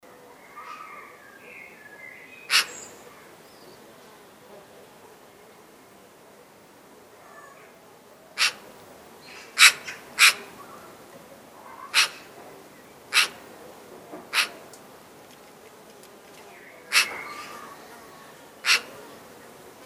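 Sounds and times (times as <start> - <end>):
quiet background birdsong: 0.0 - 19.8
Eurasian magpie Pica pica calling with abrupt grating notes: 2.4 - 3.0, 8.4 - 8.6, 9.3 - 10.6, 11.6 - 12.4, 13.1 - 13.4, 14.3 - 14.6, 16.8 - 18.0, 18.6 - 19.0.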